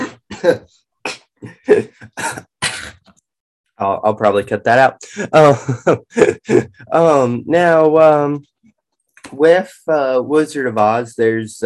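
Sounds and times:
sharp broadband coughs: 0:00.0 - 0:03.1
speech: 0:00.4 - 0:00.8, 0:01.4 - 0:02.5, 0:03.8 - 0:08.5, 0:09.3 - 0:11.6.

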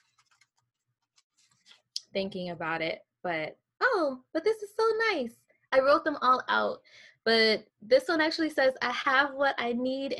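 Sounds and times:
self-made mantra card deck being shuffled: 0:00.0 - 0:01.8
speech: 0:02.1 - 0:10.1.

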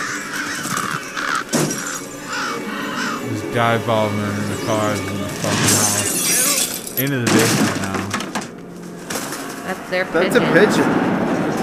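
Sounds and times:
crows cawing: 0:00.0 - 0:05.4
speech: 0:03.6 - 0:06.0, 0:07.0 - 0:08.0, 0:09.7 - 0:11.3.

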